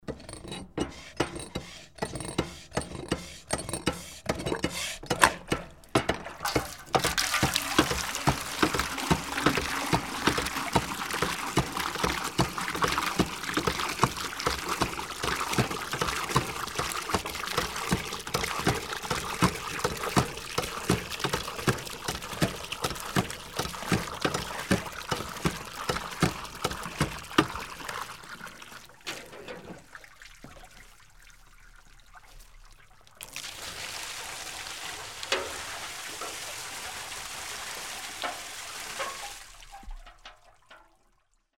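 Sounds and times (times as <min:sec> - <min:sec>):
hand pump: 0:00.0 - 0:29.8.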